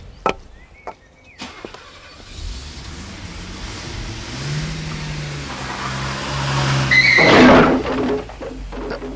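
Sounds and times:
car engine revving: 0:01.4 - 0:09.0
car smashing through a garden gate: 0:04.1 - 0:09.1.

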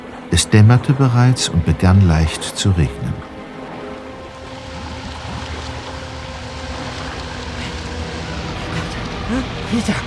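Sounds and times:
motorboat engine droning across water in light rain: 0:00.0 - 0:10.0
speech: 0:00.3 - 0:03.3, 0:09.3 - 0:10.0
rushing wash and spray of motorboat: 0:03.4 - 0:10.0.

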